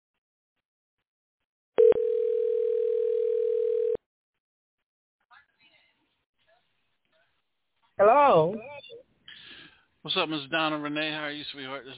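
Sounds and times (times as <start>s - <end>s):
telephone dial tone: 1.8s - 4.0s
speech: 8.0s - 8.8s, 10.0s - 11.9s.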